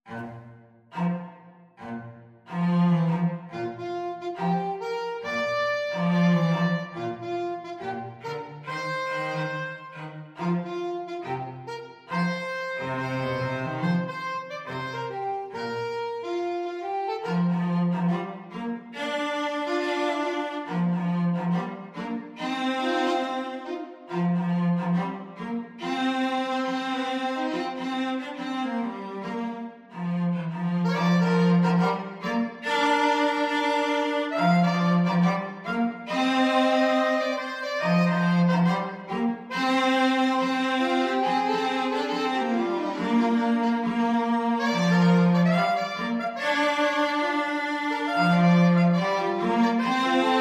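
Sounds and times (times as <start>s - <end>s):
cello: 0.0s - 50.3s
alto saxophone: 0.1s - 50.3s.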